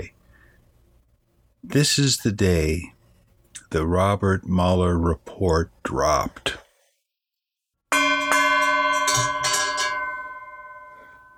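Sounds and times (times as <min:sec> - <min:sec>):
speech: 0:01.6 - 0:03.0, 0:03.6 - 0:06.6
gong being struck with shimmering metallic tone: 0:07.9 - 0:11.3.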